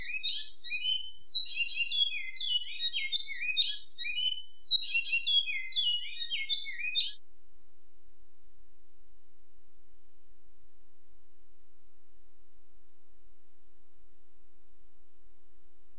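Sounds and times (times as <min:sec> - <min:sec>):
great-billed seed finch song: 0:00.0 - 0:07.2.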